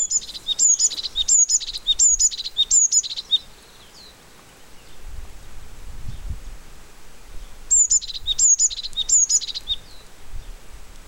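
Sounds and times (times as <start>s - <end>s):
Parus cyanus song: 0.0s - 5.2s, 7.4s - 10.6s
Emberiza spodocephala song in background: 0.0s - 6.4s, 7.1s - 10.8s.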